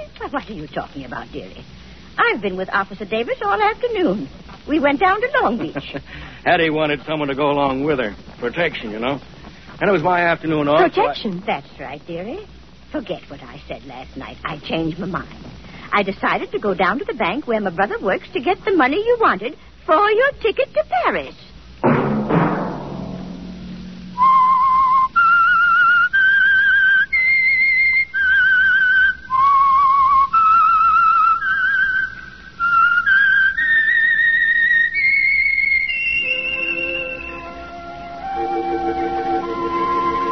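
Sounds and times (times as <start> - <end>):
speech: 0.3 - 21.4
lone whistled theme melody of a radio program: 24.2 - 40.3
soft orchestral music: 36.1 - 40.3.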